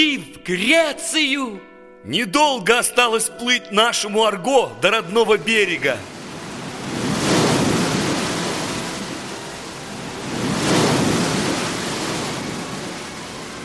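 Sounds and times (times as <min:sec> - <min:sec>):
speech: 0:00.0 - 0:06.2
stormy sea waves crashing: 0:05.4 - 0:13.6
wind rushing: 0:05.9 - 0:13.6.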